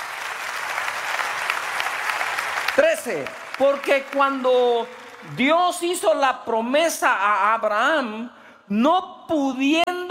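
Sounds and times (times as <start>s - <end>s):
audience applause for God: 0.0s - 5.5s
speech: 2.8s - 10.0s.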